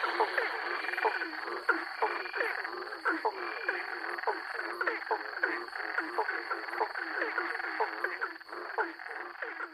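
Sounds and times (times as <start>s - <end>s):
steady high insect-like drone: 0.0s - 1.7s
nighttime chorus of eleven frog species calling: 0.0s - 9.7s.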